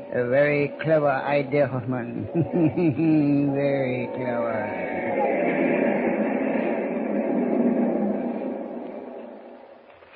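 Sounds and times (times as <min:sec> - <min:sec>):
speech: 0:00.2 - 0:05.8
laughter: 0:01.9 - 0:06.0
moving passenger train rumbling: 0:03.5 - 0:09.9.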